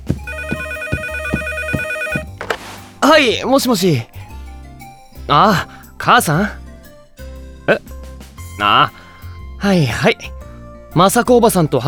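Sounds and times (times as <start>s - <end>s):
telephone ringing with a bright buzzy electronic ring: 0.2s - 2.8s
speech: 3.0s - 4.2s, 5.3s - 6.6s, 7.7s - 7.9s, 8.6s - 9.0s, 9.6s - 11.8s.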